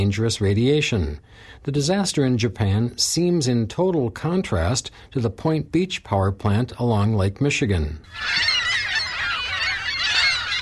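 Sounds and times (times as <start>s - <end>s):
speech: 0.0s - 8.5s
flock of gulls squawking in a Lake Michigan shore parking lot: 8.0s - 10.6s.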